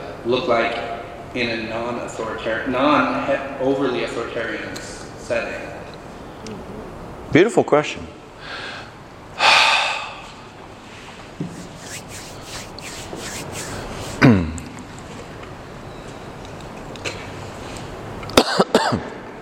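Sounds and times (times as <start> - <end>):
speech: 0.2 - 5.7, 7.3 - 8.6
quiet breathing: 8.4 - 11.3
person coughing into a PA system microphone: 18.4 - 19.1.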